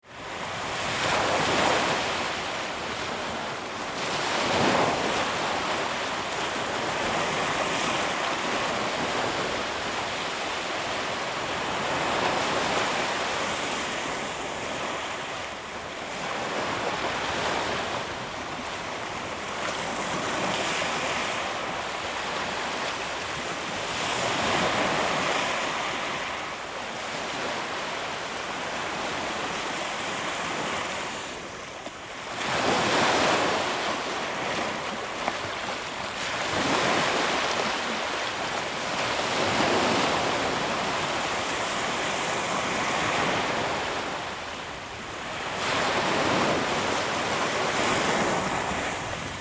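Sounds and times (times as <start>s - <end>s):
calm sea waves on a beach: 0.0s - 49.3s.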